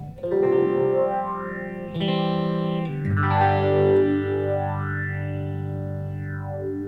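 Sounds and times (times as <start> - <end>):
distorted notes through a phaser pedal with heavy resonance and feedback: 0.0 - 6.8.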